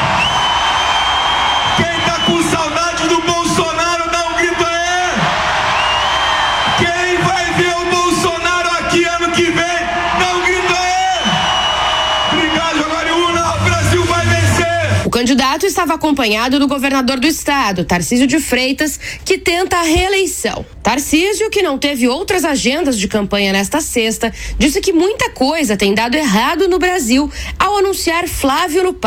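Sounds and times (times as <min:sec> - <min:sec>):
whoops and yells from rally crowd: 0:00.0 - 0:03.6, 0:04.6 - 0:15.1
large political campaign rally crowd in Brazil roaring and shouting: 0:00.0 - 0:15.1
speech: 0:15.2 - 0:29.0.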